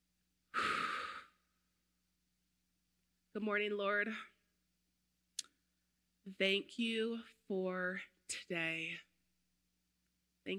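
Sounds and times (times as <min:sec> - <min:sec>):
deep breath drawn in slowly during quiet prayer time: 0:00.5 - 0:01.4
speech: 0:03.4 - 0:04.3, 0:06.3 - 0:09.1.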